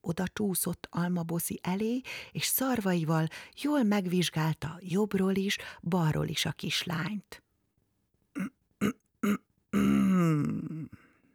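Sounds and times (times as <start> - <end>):
speech: 0.0 - 7.4, 9.2 - 10.7
person performing a theatrical throat clearing: 8.4 - 11.1.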